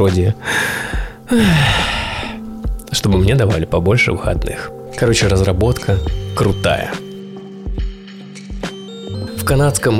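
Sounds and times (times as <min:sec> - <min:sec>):
speech: 0:00.0 - 0:02.0, 0:02.9 - 0:07.0, 0:09.5 - 0:09.9
person imitating tired heavy breathing: 0:00.4 - 0:02.6
person groaning wearily: 0:01.3 - 0:02.4.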